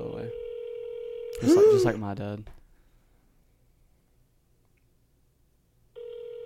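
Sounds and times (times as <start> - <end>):
electronic telephone ring of a call being placed: 0.2 - 1.4, 6.0 - 6.4
speech: 1.4 - 2.6.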